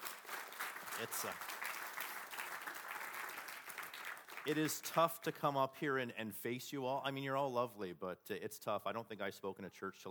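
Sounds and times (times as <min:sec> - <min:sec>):
audience applauding in a church: 0:00.0 - 0:05.0
speech: 0:01.0 - 0:01.5, 0:04.4 - 0:10.0.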